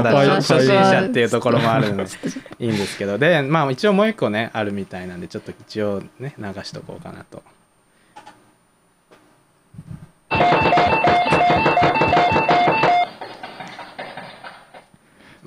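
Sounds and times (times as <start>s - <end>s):
speech: 0.0s - 7.6s
doorbell chimes used as alarm clock: 10.3s - 13.1s.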